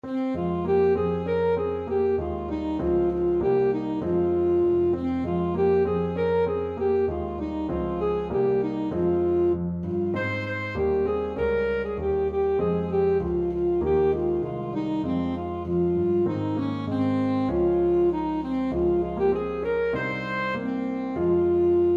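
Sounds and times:
alto saxophone playing a carol: 0.0 - 21.9.

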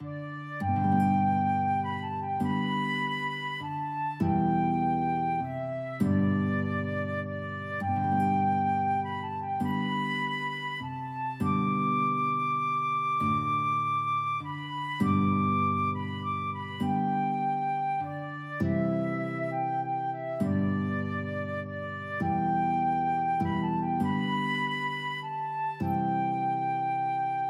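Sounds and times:
guitar and flute duet: 0.0 - 27.4.

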